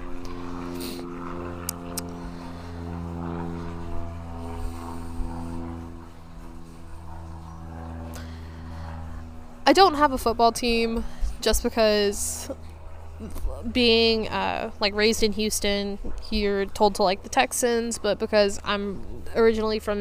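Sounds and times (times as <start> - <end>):
airplane engine droning overhead: 0.0 - 19.9
speech: 9.7 - 19.9.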